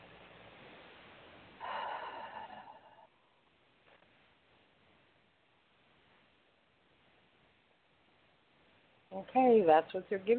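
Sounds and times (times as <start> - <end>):
person taking a deep breath during a guided relaxation exercise: 1.6 - 3.2
speech: 9.1 - 10.3.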